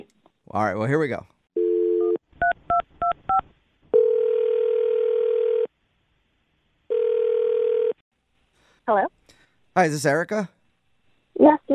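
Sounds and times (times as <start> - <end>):
speech: 0.0 - 1.3, 8.9 - 9.2, 9.8 - 10.6, 11.4 - 11.7
telephone dial tone: 1.6 - 2.2, 4.0 - 5.7, 6.9 - 8.0.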